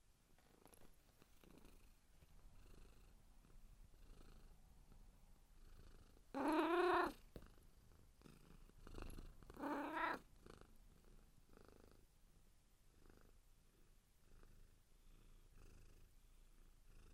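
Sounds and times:
cat purring: 0.4 - 12.2, 12.9 - 17.1
cat meowing: 6.4 - 7.2, 9.6 - 10.2.

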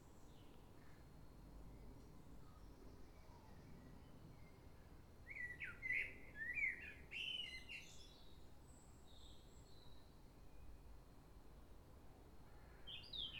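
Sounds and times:
common blackbird song in London: 1.7 - 10.7, 12.6 - 13.3.

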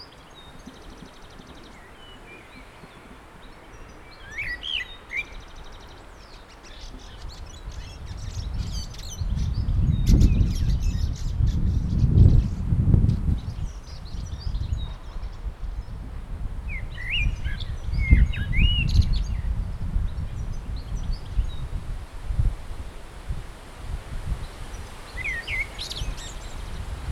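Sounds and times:
common blackbird singing warbled fluty phrases: 0.0 - 21.9, 24.3 - 27.0.

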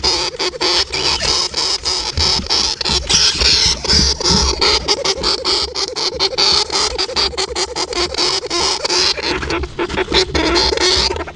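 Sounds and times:
hamster scratching inside a jar: 0.0 - 11.3.

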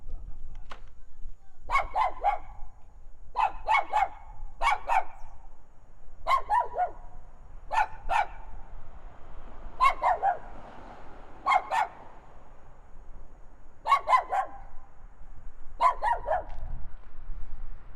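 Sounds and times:
traffic: 0.0 - 17.9
small dog barking in a backyard: 1.7 - 2.6, 3.3 - 5.3, 6.2 - 8.5, 9.8 - 10.5, 11.4 - 12.1, 13.8 - 14.7, 15.8 - 16.6.

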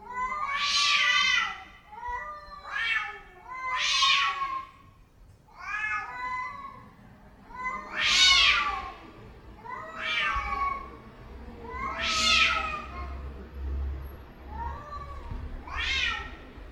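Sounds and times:
domestic cats in heat caterwauling: 0.0 - 4.8, 5.6 - 6.9, 7.5 - 9.0, 9.6 - 11.0, 11.6 - 13.2, 14.5 - 16.5.

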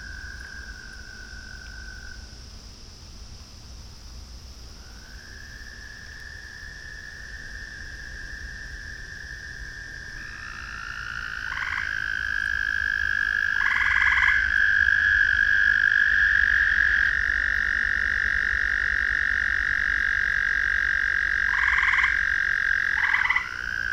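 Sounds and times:
several frogs calling in a ravine at night: 0.0 - 2.4, 4.8 - 23.9
rattling pulsed frog croaks: 5.4 - 23.9.

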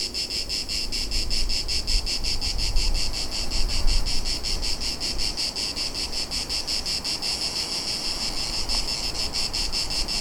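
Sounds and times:
several cicadas singing: 0.0 - 10.2.

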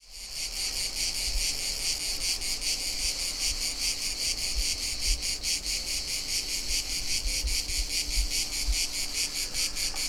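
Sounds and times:
cicada chorus droning: 0.0 - 10.0.

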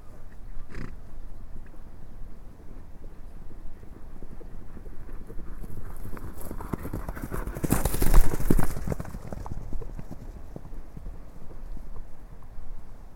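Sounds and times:
background noise: 0.0 - 13.1
several ponies galloping hoofbeats: 3.0 - 12.5.

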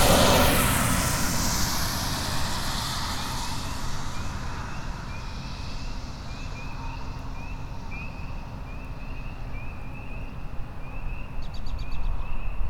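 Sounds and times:
heavy steady low rumble: 0.0 - 7.9
spring peepers chorusing in rural outdoor ambience: 0.5 - 12.5.

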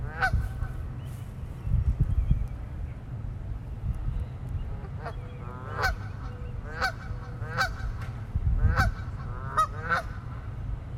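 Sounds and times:
geese giving harsh nasal honks: 0.0 - 0.8, 4.8 - 8.0, 8.6 - 10.4
deep rumbling background noise: 0.0 - 10.9.

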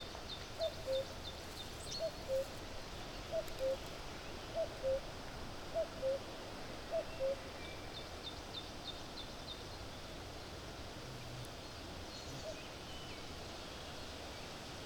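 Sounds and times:
quiet hiss: 0.0 - 14.8
common cuckoo calling: 0.6 - 1.1, 2.0 - 2.5, 3.3 - 3.9, 4.6 - 5.1.

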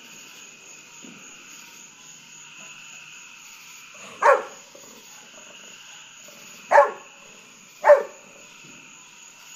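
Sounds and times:
Golden retriever barking at fireworks: 4.0 - 4.7, 6.7 - 7.2, 7.8 - 8.3.

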